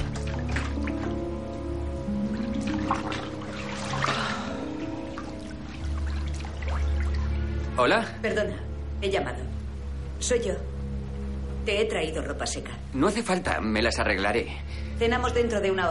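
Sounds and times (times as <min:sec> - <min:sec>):
hot water pouring into a wooden bathtub: 0:00.0 - 0:07.6
speech: 0:07.8 - 0:09.6, 0:10.2 - 0:10.7, 0:11.7 - 0:15.9.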